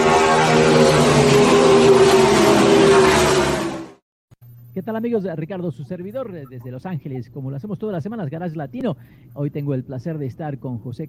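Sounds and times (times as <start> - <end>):
car engine accelerating in first gear: 0.0 - 4.0
speech: 4.8 - 11.0.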